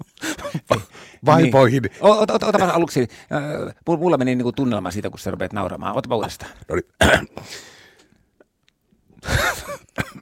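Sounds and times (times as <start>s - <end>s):
speech: 0.5s - 7.8s
person coughing: 7.0s - 7.4s, 9.2s - 10.2s
breathy exhale: 7.4s - 8.1s
rough voiced throat clearing: 9.2s - 10.2s.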